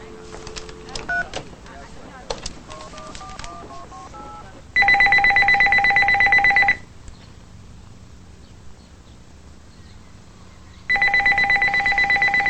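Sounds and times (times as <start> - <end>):
phone dialing tones in an office: 0.0 - 6.8, 10.9 - 12.4
telephone ringing: 0.0 - 6.9, 10.9 - 12.4.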